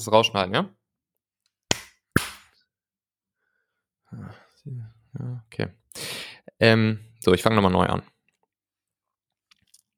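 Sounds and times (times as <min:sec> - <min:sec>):
speech: 0:00.0 - 0:00.8, 0:04.1 - 0:08.1
hand claps for audio sync: 0:01.7 - 0:02.5.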